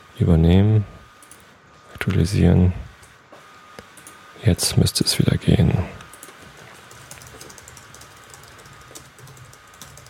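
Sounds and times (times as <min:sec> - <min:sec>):
speech: 0:00.2 - 0:01.0, 0:02.0 - 0:02.9, 0:04.4 - 0:06.0
loud typing on a computer keyboard: 0:06.1 - 0:10.0.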